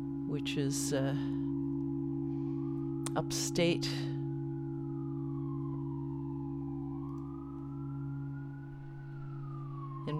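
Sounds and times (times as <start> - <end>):
siren wailing: 0.0 - 10.1
steady low electrical hum: 0.0 - 10.1
speech: 0.3 - 1.4, 3.2 - 4.1.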